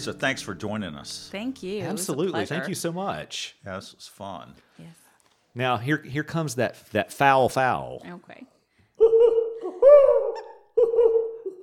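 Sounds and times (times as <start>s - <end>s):
speech: 0.0s - 5.0s, 5.6s - 9.3s
owl hooting: 9.0s - 11.6s.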